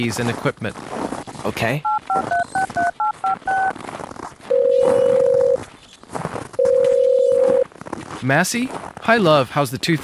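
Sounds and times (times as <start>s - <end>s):
speech: 0.0s - 2.4s, 8.2s - 10.0s
telephone keypad tones dialing a number in France: 1.8s - 3.7s, 4.5s - 5.6s, 6.6s - 7.6s.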